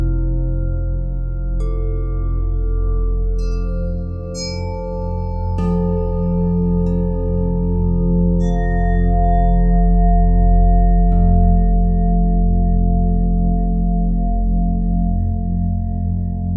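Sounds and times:
deep steady pulsing hum: 0.0s - 16.5s
Tibetan singing bowls ringing in long overlapping tones: 3.4s - 7.3s, 8.4s - 10.9s.

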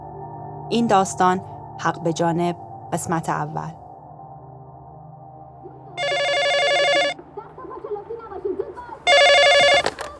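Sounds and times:
speech: 0.7s - 3.8s
home telephone ringing with electronic trill: 6.0s - 7.2s, 9.0s - 10.1s.

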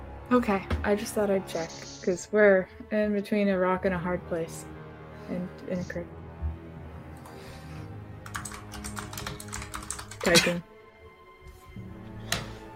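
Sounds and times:
speech: 0.3s - 4.7s, 5.3s - 6.2s, 10.2s - 10.7s
typing on a computer keyboard during a tabletop game session: 8.2s - 10.5s.

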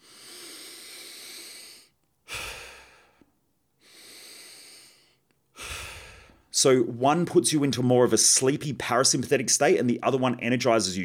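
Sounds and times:
person breathing deeply in a breathing demonstration: 0.0s - 6.5s
speech: 6.6s - 11.0s.

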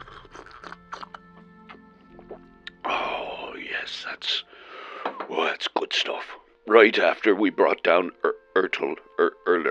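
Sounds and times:
swallowing: 0.0s - 2.8s
wet sipping clicks: 0.0s - 2.8s
speech: 3.9s - 4.5s, 5.3s - 9.6s.

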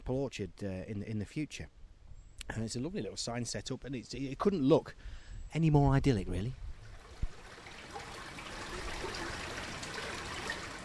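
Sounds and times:
speech: 0.1s - 1.8s, 2.5s - 6.6s
brook running water trickling and burbling: 6.7s - 10.8s.

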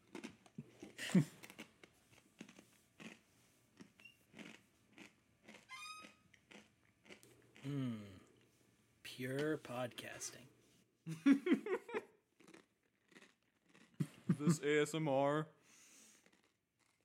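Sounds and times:
crunching on a snack: 0.0s - 8.5s, 12.4s - 14.3s, 15.8s - 17.0s
speech: 1.1s - 1.4s, 7.6s - 8.0s, 9.2s - 12.0s, 14.4s - 15.6s
laughter: 11.1s - 12.1s, 14.0s - 14.8s.

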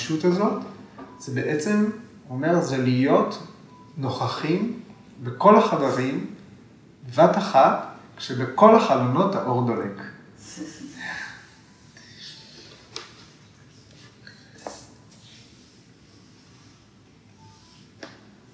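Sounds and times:
speech: 0.1s - 6.4s, 7.0s - 11.2s
deep airy inhale: 15.3s - 17.8s.

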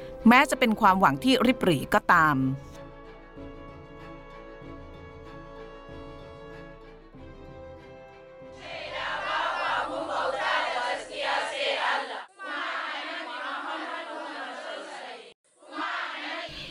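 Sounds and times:
speech: 0.2s - 2.7s
large group of girls chanting prayers in unison: 8.6s - 16.6s.

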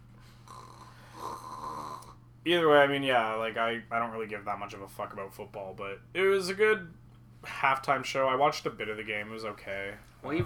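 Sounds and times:
faint low droning snore: 0.4s - 2.2s
speech: 2.4s - 10.4s.

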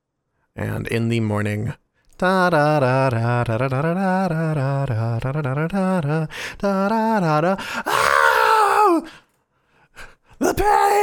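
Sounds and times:
speech: 0.6s - 8.2s, 10.4s - 11.0s
person crying out in pain: 7.8s - 9.1s, 10.4s - 11.0s
person groaning in pain: 7.8s - 9.2s.

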